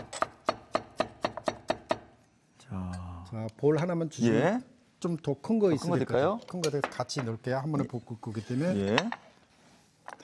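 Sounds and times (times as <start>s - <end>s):
knife chopping vegetables to even lengths on a board: 0.0s - 2.1s
speech: 2.7s - 9.2s.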